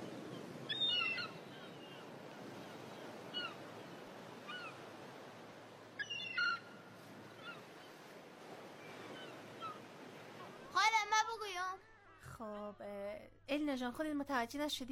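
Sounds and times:
ocean surf: 0.0 - 11.8
seagulls squawking: 0.1 - 4.9, 6.0 - 8.0, 8.9 - 10.7
speech: 12.4 - 14.9.

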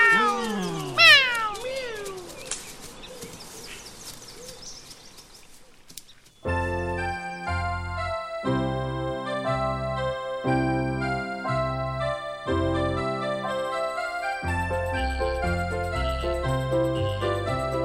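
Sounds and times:
two cats meowing: 0.0 - 2.7
music: 6.5 - 17.8.

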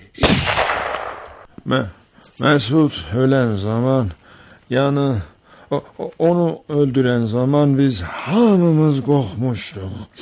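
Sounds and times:
gunshot sound effect: 0.2 - 1.5
speech: 1.7 - 10.2.

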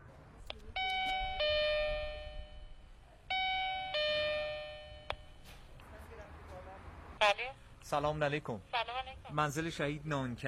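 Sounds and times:
house doorbell electronic two-note ding-dong: 0.8 - 5.4
speech: 7.4 - 10.4.

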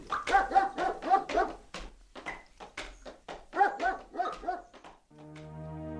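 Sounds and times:
dog barking: 0.1 - 1.6, 3.5 - 4.8.

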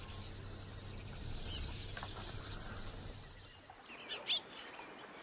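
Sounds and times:
birds flushing up from reeds: 0.0 - 3.7
scattered sharp bird chirps and calls: 0.0 - 4.4.

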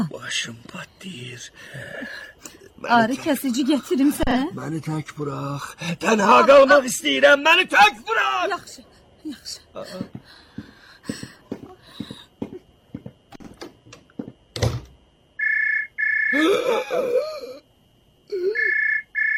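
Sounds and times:
speech: 0.0 - 11.3, 16.3 - 17.5
telephone ringtone: 15.4 - 16.4, 18.6 - 19.3.

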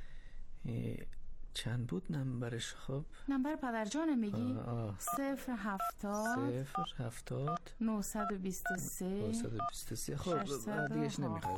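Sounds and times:
speech: 0.6 - 11.5
electronic keypad beeps of phone number being dialed: 5.8 - 6.9, 8.2 - 8.9, 9.6 - 11.5.

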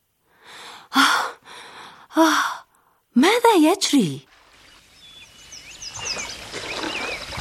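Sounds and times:
person gasping for breath as water enters the nose: 0.4 - 2.7
speech: 2.2 - 2.5, 3.5 - 4.3.

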